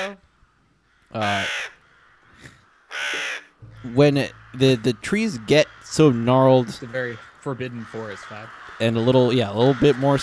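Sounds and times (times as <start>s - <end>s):
speech: 0.0s - 0.3s, 1.1s - 1.8s, 3.8s - 10.2s
crows cawing: 0.0s - 10.2s.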